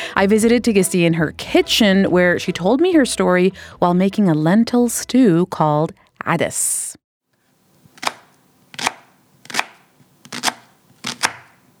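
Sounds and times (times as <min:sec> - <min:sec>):
speech: 0:00.2 - 0:07.0
knife chopping onions on a board in a home kitchen: 0:07.9 - 0:11.7.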